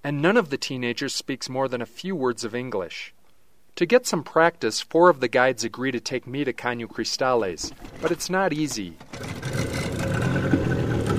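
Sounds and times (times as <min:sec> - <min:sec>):
speech: 0:00.0 - 0:03.2, 0:03.8 - 0:09.9
leaky wooden motorboat engine droning on a river: 0:09.2 - 0:11.1.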